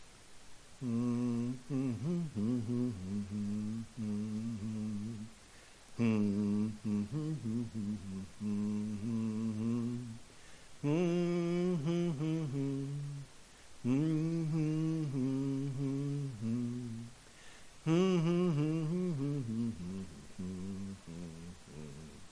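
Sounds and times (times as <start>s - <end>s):
single voice humming a slow hymn melody: 0.8s - 5.4s, 6.0s - 10.2s, 10.8s - 17.2s, 17.8s - 22.3s
short breaths: 5.4s - 5.9s, 10.3s - 10.8s, 13.4s - 13.8s, 17.2s - 17.8s.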